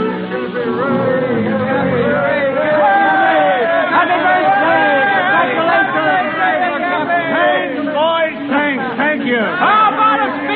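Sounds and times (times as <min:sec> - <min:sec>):
huge crowd of sailors and ship owners cheering and shouting: 0:00.8 - 0:10.5.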